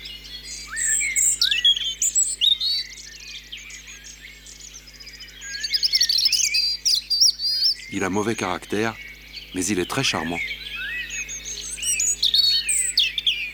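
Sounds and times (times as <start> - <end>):
European robin singing: 0.0 - 13.5
faint low hum: 7.9 - 10.6
speech: 8.0 - 10.6.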